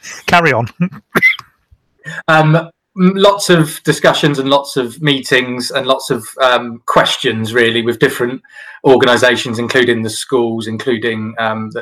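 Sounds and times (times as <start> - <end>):
speech: 0.3 - 1.3, 2.0 - 11.8
sharp cough of a speaker: 0.8 - 1.5.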